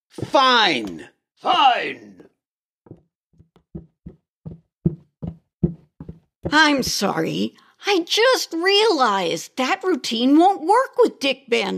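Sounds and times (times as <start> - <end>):
speech: 0.2 - 2.3, 6.5 - 11.7
heavy thudding footsteps at walking pace: 2.9 - 7.4.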